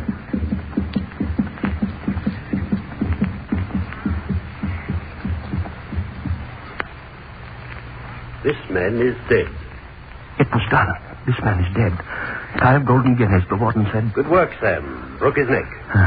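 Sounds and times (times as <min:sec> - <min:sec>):
heartbeat sound effect thumps: 0:00.0 - 0:08.4
faint hum: 0:00.0 - 0:16.0
speech: 0:08.5 - 0:09.6, 0:10.5 - 0:16.0.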